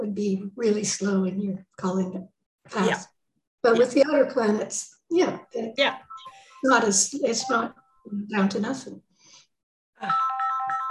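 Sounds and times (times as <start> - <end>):
speech: 0.0 - 9.1, 10.0 - 10.2
phone ringtone playing a bright melodic electronic chime: 5.9 - 8.1, 10.0 - 10.8.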